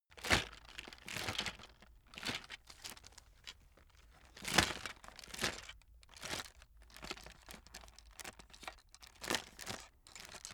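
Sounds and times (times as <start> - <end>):
chocolate box being handled: 0.2 - 9.9.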